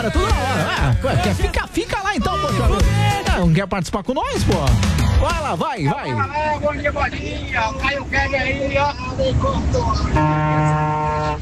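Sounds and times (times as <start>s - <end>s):
laughter: 0.0s - 3.4s
busy voices: 0.0s - 11.4s
speech: 0.0s - 11.4s
Brazilian car horn honking: 10.1s - 11.4s.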